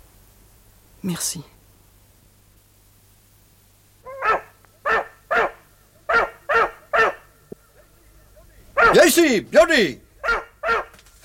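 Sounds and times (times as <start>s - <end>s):
faint low hum: 0.0s - 11.2s
speech: 1.0s - 1.6s, 8.9s - 10.0s
dog barking: 4.0s - 7.3s, 8.8s - 9.2s, 10.2s - 11.0s.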